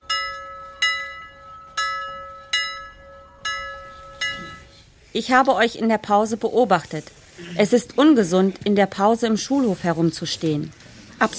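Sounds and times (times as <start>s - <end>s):
school bell ringing: 0.0s - 4.9s
speech: 5.2s - 11.3s.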